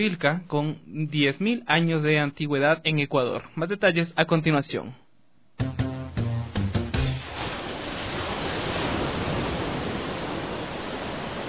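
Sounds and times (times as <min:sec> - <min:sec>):
speech: 0:00.0 - 0:05.0
short tonal musical notes: 0:05.6 - 0:07.3
sea waves: 0:07.0 - 0:11.4.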